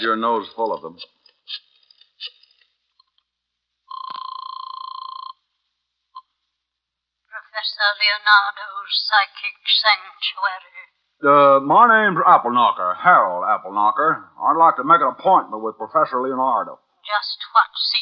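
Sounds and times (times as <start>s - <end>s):
speech: 0.0s - 2.4s, 7.6s - 18.0s
steady electronic telephone ring: 3.9s - 5.4s.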